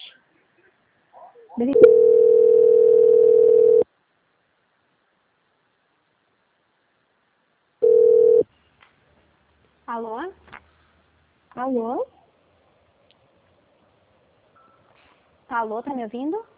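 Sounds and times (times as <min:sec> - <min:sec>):
speech: 0:01.6 - 0:02.1, 0:15.6 - 0:16.5
telephone line tone during a call transfer: 0:01.7 - 0:03.8, 0:07.8 - 0:08.4.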